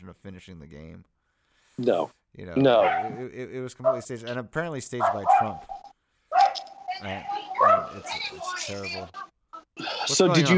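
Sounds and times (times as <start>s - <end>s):
speech: 0.0s - 1.2s, 1.8s - 5.9s, 7.0s - 10.5s
dogs whining and whimpering: 2.6s - 4.1s, 5.0s - 9.3s
dogs barking outside: 2.6s - 9.3s.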